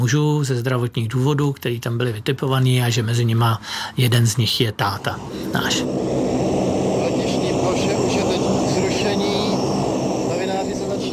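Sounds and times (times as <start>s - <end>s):
speech: 0.0s - 6.4s
airplane engine drone after landing: 3.2s - 11.1s
faint indistinct voices: 4.9s - 11.1s.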